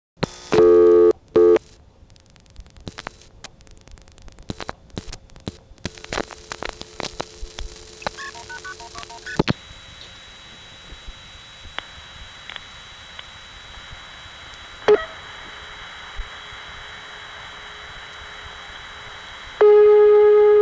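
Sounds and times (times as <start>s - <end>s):
faint telephone line hum: 0.2s - 20.5s
telephone tone bursts: 0.6s - 1.6s, 8.0s - 9.4s
sharp clicks: 1.6s - 9.6s.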